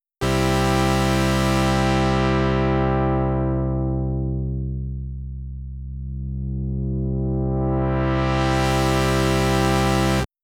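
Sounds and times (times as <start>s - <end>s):
dynamic filter sweep: 0.2s - 10.3s.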